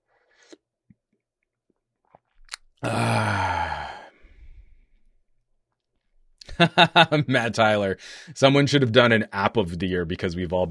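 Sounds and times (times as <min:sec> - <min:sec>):
mouth clicks: 0:02.4 - 0:02.8
speech: 0:02.8 - 0:03.4, 0:06.6 - 0:10.7
satisfied exhale: 0:02.8 - 0:05.0.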